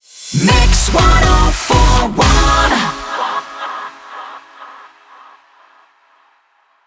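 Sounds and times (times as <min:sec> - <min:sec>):
122 bpm rapid fire beat in C: 0:00.4 - 0:03.0.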